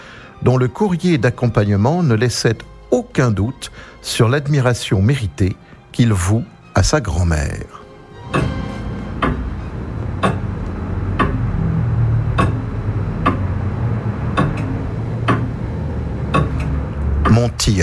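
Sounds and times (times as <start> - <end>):
speech: 0.4 - 8.6, 17.4 - 17.8
clock ticking: 8.3 - 17.7.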